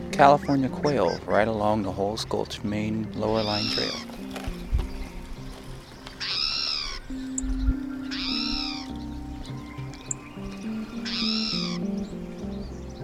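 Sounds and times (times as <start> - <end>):
soft background music: 0.0 - 13.0
speech: 0.2 - 4.1
spotted towhee giving mew call in foothills near Boise: 0.3 - 1.4, 3.3 - 4.1, 6.2 - 7.4, 8.0 - 9.0, 9.6 - 12.0.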